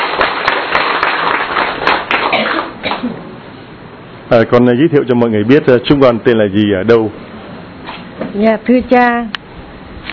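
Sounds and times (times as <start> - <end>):
audience applause welcoming people being introduced: 0.0 - 2.8
speech: 4.3 - 7.3, 8.4 - 9.4.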